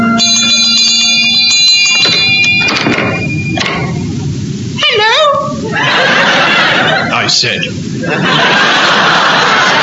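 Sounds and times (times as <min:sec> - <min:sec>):
clanging bell at the gates of a keep: 0:00.2 - 0:04.0
laughter: 0:05.0 - 0:09.8.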